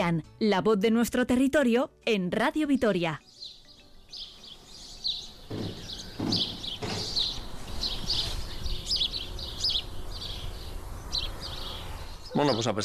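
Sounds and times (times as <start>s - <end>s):
speech: 0.0s - 3.4s, 12.4s - 12.8s
birds trilling and chirping: 2.8s - 12.8s
dull knocks: 5.4s - 7.5s.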